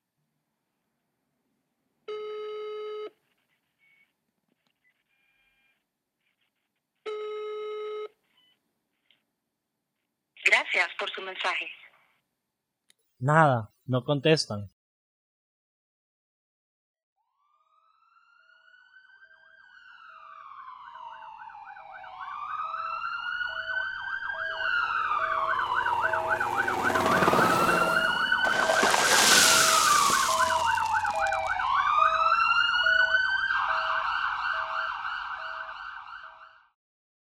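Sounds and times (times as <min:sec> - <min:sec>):
speech: 0:10.6 - 0:11.8, 0:13.2 - 0:14.7
sirens of ambulances, police and fire trucks wailing and yelping: 0:17.7 - 0:36.5
emergency vehicle engine rumble: 0:24.8 - 0:31.0.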